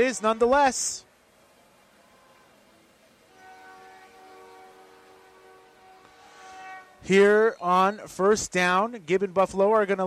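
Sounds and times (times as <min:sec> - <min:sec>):
speech: 0:00.0 - 0:01.1, 0:07.0 - 0:10.0
train horn multi-tone blast: 0:01.5 - 0:07.5.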